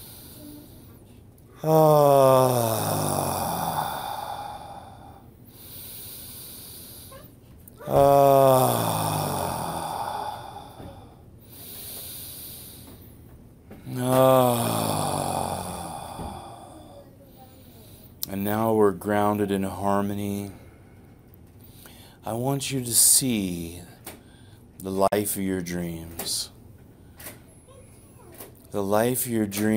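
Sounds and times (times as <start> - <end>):
group taking deep breaths in unison: 0.0 - 18.2, 20.5 - 22.2, 24.1 - 24.7
speech: 1.6 - 3.2, 19.4 - 20.6, 22.3 - 24.0, 24.8 - 26.5, 28.7 - 29.7.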